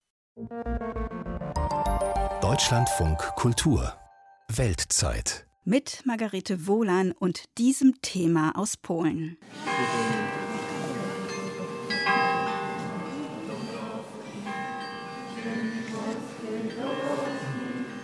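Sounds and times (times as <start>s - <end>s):
speech: 0.4s - 1.1s, 2.6s - 10.2s
church bells ringing in Gdańsk at a memorial gathering: 1.6s - 4.3s, 9.6s - 18.0s.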